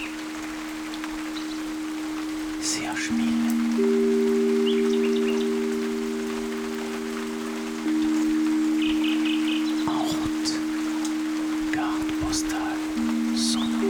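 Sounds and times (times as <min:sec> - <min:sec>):
constant low humming drone: 0:00.0 - 0:13.8
nightingale singing short bright phrases in the rain: 0:00.0 - 0:13.8
steady rain hissing: 0:00.0 - 0:13.8
speech: 0:02.6 - 0:03.9.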